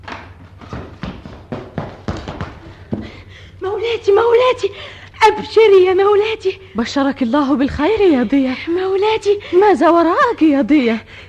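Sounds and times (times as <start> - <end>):
hurried footsteps: 0.0 - 3.6
speech: 3.7 - 11.2.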